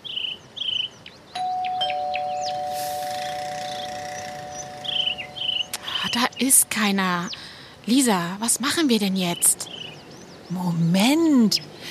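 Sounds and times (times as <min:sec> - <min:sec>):
two-note doorbell ding-dong: 0:01.4 - 0:05.8
crickets chirping: 0:01.9 - 0:06.5
speech: 0:06.1 - 0:09.8, 0:10.5 - 0:11.8.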